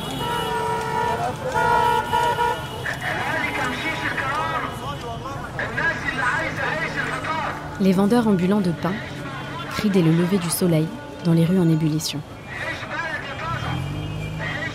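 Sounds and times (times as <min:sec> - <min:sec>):
car horns honking in congested city traffic in Cairo: 0:00.0 - 0:05.2, 0:13.0 - 0:14.7
hubbub of voices: 0:00.0 - 0:14.7
street noise: 0:00.0 - 0:14.7
speech: 0:07.8 - 0:09.1, 0:09.8 - 0:12.3.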